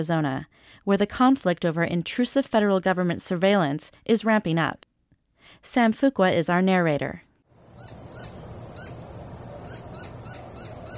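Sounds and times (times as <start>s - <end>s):
speech: 0.0s - 4.9s, 5.5s - 8.0s
open-air hiss in the Sonoran Desert: 0.0s - 10.9s
whitetail and Inca doves cooing at dawn in the Sonoran Desert, Arizona: 7.6s - 10.9s.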